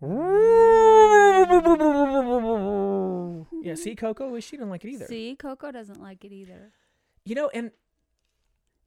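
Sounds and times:
voice imitating a house groaning in strong wind: 0.0 - 4.0
speech: 3.8 - 7.8.

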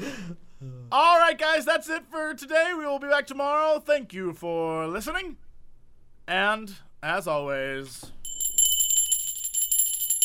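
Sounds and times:
speech: 0.0 - 5.4, 6.3 - 8.2
bell ringing: 8.2 - 10.2.

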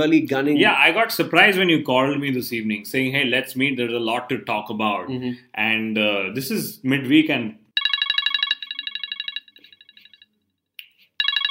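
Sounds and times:
speech: 0.0 - 7.6
loud electronic phone ringtone with rapid pulsing melody: 7.8 - 10.4, 11.2 - 11.4.

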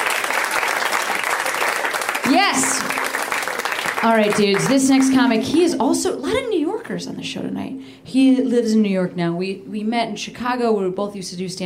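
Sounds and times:
audience applauding a comedian at a stand-up comedy show: 0.0 - 5.1
speech: 4.0 - 11.6.

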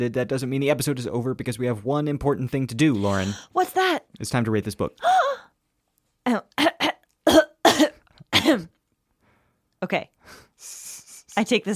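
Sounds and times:
speech: 0.0 - 5.5, 6.3 - 6.7, 8.5 - 8.7, 9.8 - 10.4, 11.4 - 11.7
harsh coughs into a microphone: 6.6 - 8.8.

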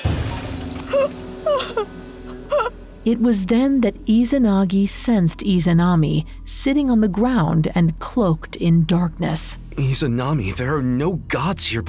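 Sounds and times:
mirror smashed with a sword: 0.0 - 1.4
speech: 1.0 - 2.0, 3.0 - 11.8
low rumble: 1.0 - 11.8.

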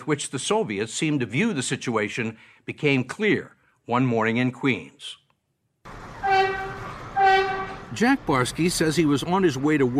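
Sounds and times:
speech: 0.0 - 5.2, 7.9 - 9.9
steady rail noise: 5.9 - 9.9
subway train rumbling at a platform: 5.9 - 9.9
subway train horn blasts: 6.2 - 7.9.

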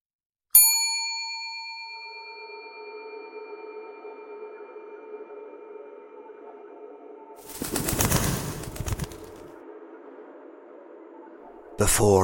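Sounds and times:
hotel lobby bell ding: 0.5 - 4.3
rustling fluttering noise: 7.4 - 9.5
speech: 11.9 - 12.2.

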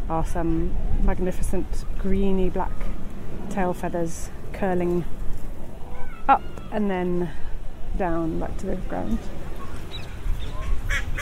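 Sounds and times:
speech: 0.1 - 5.2, 6.3 - 9.4
ducks quacking while bathing in water: 9.6 - 11.2.

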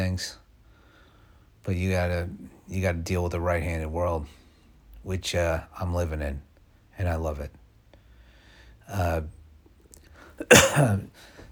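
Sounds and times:
speech: 0.0 - 0.4, 1.6 - 4.4, 5.0 - 7.6, 8.9 - 9.4, 10.4 - 11.3
loud harsh cough: 10.4 - 11.1.

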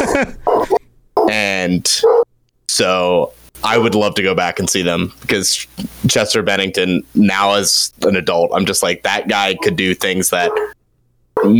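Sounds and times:
dog barking excitedly with high-pitched barks and yelps: 0.0 - 1.3, 2.0 - 2.3, 9.6 - 9.8, 10.4 - 10.8
speech: 0.2 - 10.8, 11.4 - 11.5.

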